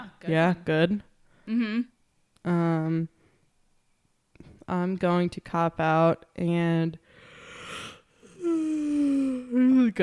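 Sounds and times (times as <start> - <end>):
speech: 0.0 - 3.2, 4.7 - 7.0, 9.5 - 10.0
person yawning: 7.5 - 9.8.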